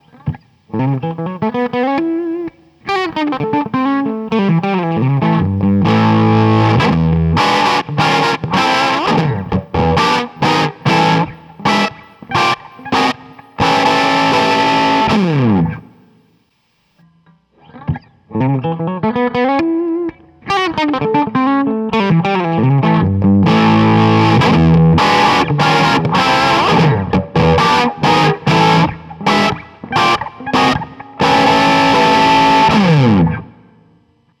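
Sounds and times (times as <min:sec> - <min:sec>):
Bassman guitar amp modelled on Axe-Fx II: 0:00.0 - 0:34.3.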